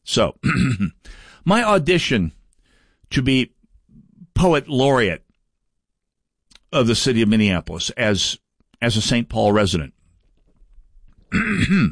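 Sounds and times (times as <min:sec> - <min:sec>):
speech: 0:00.2 - 0:02.4, 0:03.1 - 0:03.6, 0:04.4 - 0:05.2, 0:06.7 - 0:10.0, 0:11.3 - 0:11.9
rasping throat clear: 0:00.4 - 0:01.0, 0:11.3 - 0:11.9.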